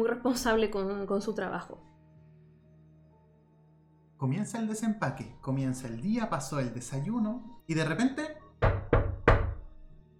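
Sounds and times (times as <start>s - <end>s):
speech: 0.0s - 1.9s, 4.2s - 8.4s
knocking on a wooden door: 8.5s - 9.8s.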